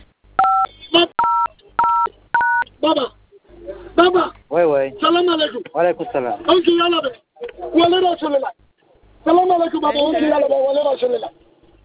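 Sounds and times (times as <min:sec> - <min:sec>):
telephone keypad tones dialing a star code: 0:00.4 - 0:02.6
speech: 0:02.8 - 0:03.1, 0:04.0 - 0:08.5, 0:09.2 - 0:11.4.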